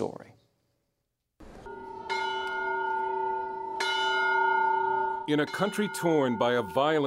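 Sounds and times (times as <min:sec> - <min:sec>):
church bell ringing: 0:01.5 - 0:07.0
speech: 0:05.3 - 0:07.0.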